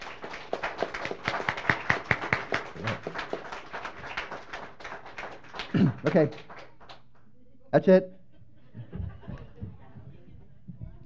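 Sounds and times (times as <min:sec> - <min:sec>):
worship service audience applause: 0:00.0 - 0:07.0
laughter: 0:02.8 - 0:03.3, 0:08.2 - 0:11.0
speech: 0:06.0 - 0:06.6, 0:07.7 - 0:08.2.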